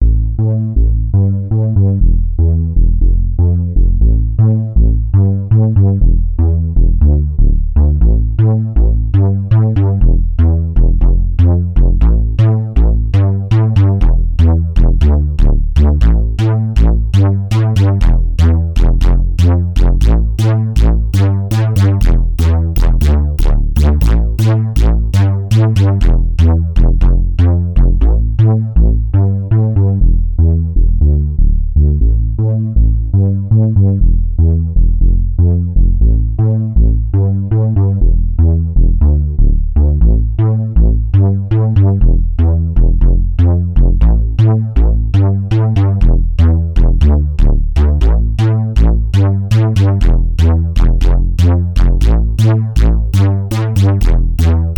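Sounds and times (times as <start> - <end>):
Yamaha YS200 synthesizer unison bass: 0.0 - 54.7.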